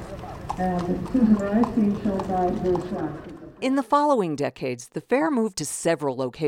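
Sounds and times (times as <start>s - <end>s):
horse hooves clip-clopping at a horse show: 0.0s - 3.9s
speech: 0.6s - 6.4s.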